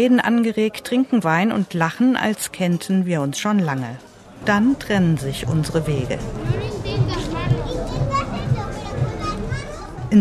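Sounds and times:
speech: 0:00.0 - 0:06.6
busy crowd murmur in harbour lanes at night: 0:03.7 - 0:10.2
regular low thump: 0:04.4 - 0:10.2
children playing between restaurant tables in harbour lanes at night: 0:06.0 - 0:10.2.

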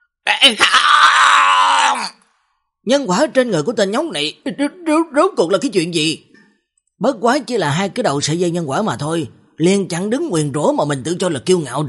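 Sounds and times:
man letting out a furious, unwilling roar: 0:00.3 - 0:02.2
speech: 0:00.4 - 0:01.1, 0:02.8 - 0:06.3, 0:07.0 - 0:11.8.

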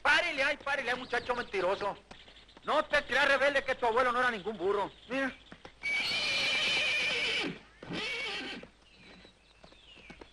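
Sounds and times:
horse hooves clip-clopping: 0:00.0 - 0:10.3
speech: 0:00.5 - 0:05.4
horse neighing: 0:05.8 - 0:08.7.

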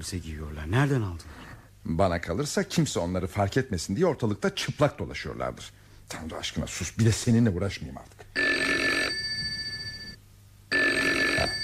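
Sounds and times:
speech: 0:00.0 - 0:08.5
telephone bell ringing: 0:08.4 - 0:11.6.

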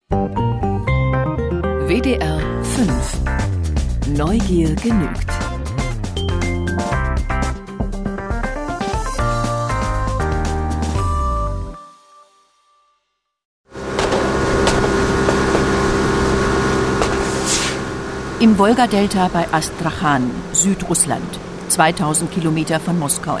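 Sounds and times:
melodic music passage: 0:00.1 - 0:12.1
speech: 0:01.9 - 0:03.5, 0:04.1 - 0:05.4, 0:18.4 - 0:23.3
police speedboat engines roaring through narrow channels of the Volga delta: 0:13.8 - 0:23.3.

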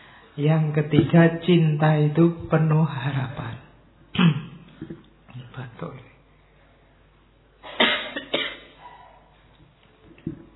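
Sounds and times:
speech: 0:00.4 - 0:04.3
person coughing in a coughing contest: 0:04.2 - 0:04.6, 0:07.6 - 0:08.8.

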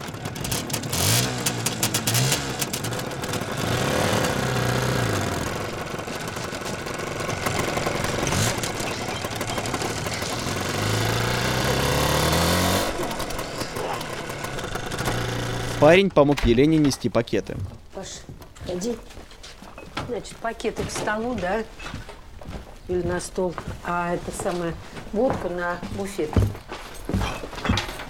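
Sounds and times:
motorcycle riding off down a road: 0:00.0 - 0:16.0
speech: 0:15.8 - 0:19.2, 0:20.1 - 0:22.0, 0:22.9 - 0:26.6.

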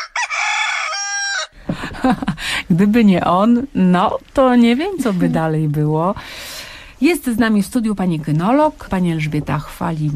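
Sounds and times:
rooster crowing: 0:00.0 - 0:01.6
speech: 0:02.0 - 0:06.4, 0:07.0 - 0:10.1.

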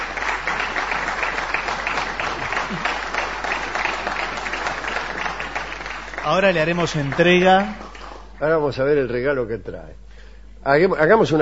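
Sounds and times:
audience applauding at a live radio stage show: 0:00.0 - 0:08.6
speech: 0:06.3 - 0:07.8, 0:08.4 - 0:10.0, 0:10.6 - 0:11.4.

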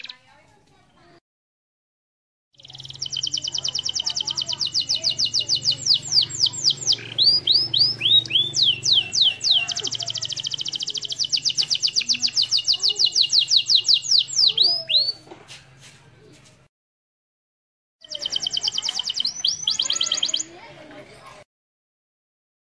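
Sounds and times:
canary master song with rapid high trills and whistled notes: 0:00.0 - 0:00.4, 0:02.6 - 0:15.3, 0:18.0 - 0:20.7.

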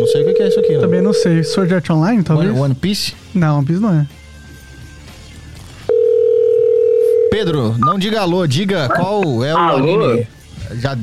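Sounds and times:
telephone dial tone while placing a call: 0:00.0 - 0:01.6, 0:05.9 - 0:07.4
speech: 0:00.1 - 0:04.2, 0:07.4 - 0:11.0.

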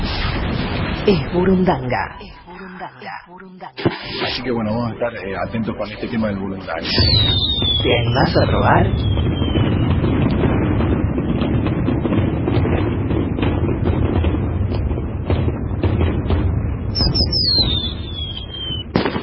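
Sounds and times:
high whistling rocket tone sliding downward: 0:00.0 - 0:01.1, 0:06.8 - 0:13.6, 0:16.9 - 0:19.2
fireworks and rockets crackling and banging: 0:00.0 - 0:02.6, 0:03.8 - 0:19.2
speech: 0:01.0 - 0:09.8.

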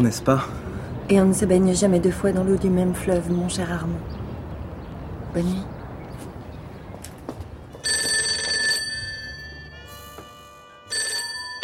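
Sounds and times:
speech: 0:00.0 - 0:04.2, 0:05.3 - 0:05.8
telephone ringing with an electronic ringtone: 0:07.8 - 0:11.6.

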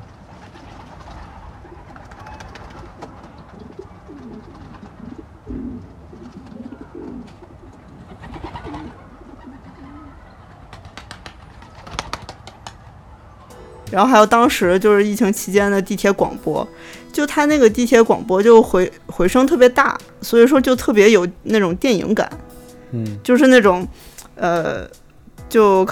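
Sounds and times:
recorded sample of pigeons cooing at the opening of a song: 0:01.6 - 0:12.1
hiss: 0:13.5 - 0:17.6, 0:21.2 - 0:25.8
speech: 0:13.9 - 0:25.8.

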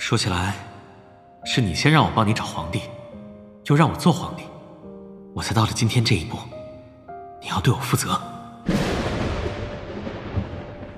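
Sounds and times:
speech: 0:00.1 - 0:00.7, 0:01.4 - 0:03.0, 0:03.7 - 0:04.5, 0:05.4 - 0:06.6, 0:07.4 - 0:09.0
heavy rain under dense clouds: 0:08.7 - 0:10.9
thunder under dense clouds: 0:08.7 - 0:10.9.

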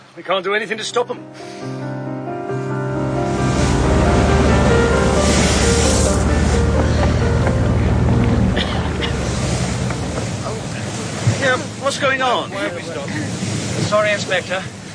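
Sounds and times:
speech: 0:00.2 - 0:01.8, 0:11.9 - 0:13.2, 0:13.9 - 0:14.8
public ferry engine droning across open water: 0:01.4 - 0:11.8
wash of waves on open water: 0:01.4 - 0:14.9
gusts of wind buffeting: 0:01.8 - 0:14.9.

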